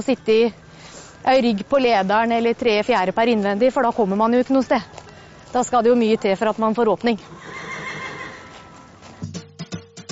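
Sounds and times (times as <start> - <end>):
speech: 0.0 - 0.6, 1.2 - 7.7
horse neighing: 7.2 - 9.0.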